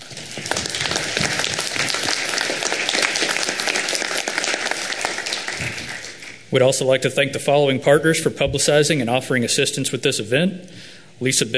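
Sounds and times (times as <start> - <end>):
audience applause: 0.0 - 6.5
speech: 6.5 - 11.5.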